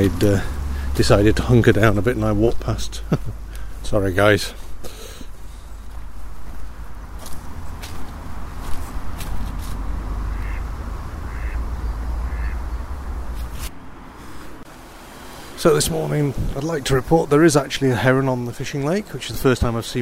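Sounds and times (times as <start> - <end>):
speech: 0.0 - 4.6, 15.6 - 20.0
steady low outdoor rumble: 0.0 - 20.0
group of ducks quacking: 10.2 - 13.3.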